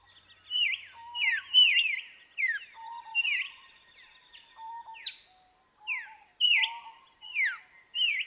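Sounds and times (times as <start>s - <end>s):
White-plumed Honeyeater song of falling whistled notes in inland South Australia: 0.0s - 8.2s.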